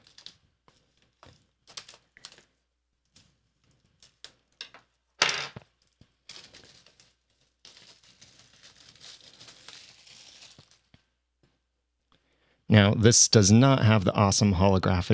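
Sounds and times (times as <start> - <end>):
plastic wrap being torn open: 6.2 - 11.0
plastic wrap being cut: 7.6 - 11.0
speech: 12.8 - 15.1.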